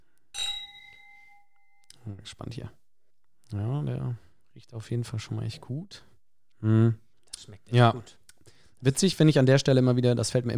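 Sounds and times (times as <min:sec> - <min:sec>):
drinking glasses clinking in a toast: 0:00.4 - 0:02.0
speech: 0:02.0 - 0:02.8, 0:03.5 - 0:08.2, 0:08.8 - 0:10.5.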